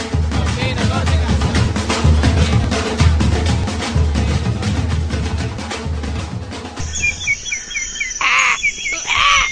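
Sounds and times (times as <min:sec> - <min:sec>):
dense loud music: 0:00.0 - 0:07.4
crow cawing: 0:07.1 - 0:09.5.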